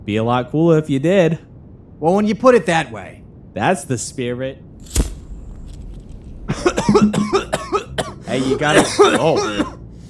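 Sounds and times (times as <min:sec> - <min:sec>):
speech: 0:00.0 - 0:05.0, 0:08.4 - 0:09.8
harsh hacking coughs after smoking: 0:06.5 - 0:09.8.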